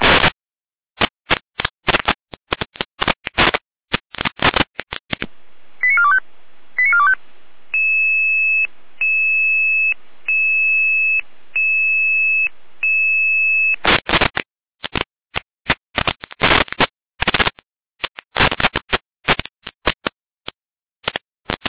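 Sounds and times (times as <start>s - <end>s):
harsh bursts of crackling digital radio data noise: 1.0s - 15.0s, 15.7s - 20.1s
short beeps of fire brigade radio alerting tones: 5.8s - 6.2s, 6.8s - 7.2s, 7.8s - 13.8s.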